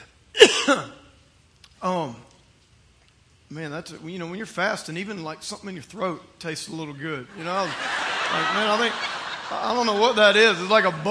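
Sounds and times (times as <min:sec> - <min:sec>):
fasting man clearing his throat: 0:00.4 - 0:01.0
speech: 0:00.7 - 0:01.0, 0:01.8 - 0:02.3, 0:03.5 - 0:11.0
laughter: 0:07.3 - 0:11.0.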